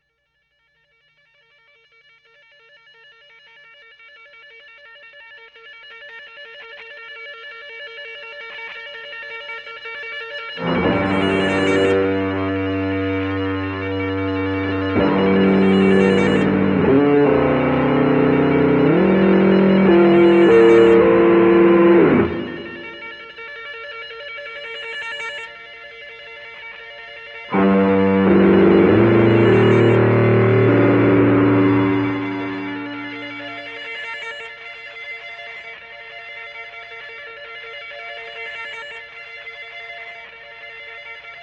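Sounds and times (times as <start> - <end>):
musical loop and solo in a New York church: 10.6 - 23.2, 27.5 - 33.8.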